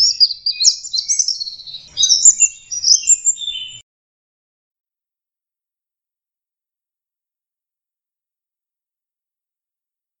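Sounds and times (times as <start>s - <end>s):
Orange-headed thrush twittering phrases and thin whistles: 0.0s - 3.8s.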